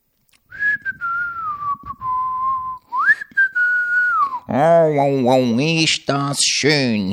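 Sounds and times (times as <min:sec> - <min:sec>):
person whistling a calm relaxed tune in an airplane cockpit: 0:00.5 - 0:04.5
speech: 0:04.6 - 0:07.1.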